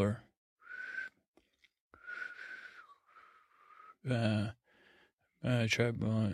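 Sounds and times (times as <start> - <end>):
speech: 0.0 - 0.2, 4.0 - 4.6, 5.4 - 6.3
person's failed attempts to whistle, blowing too hard: 0.6 - 1.2, 2.0 - 4.0.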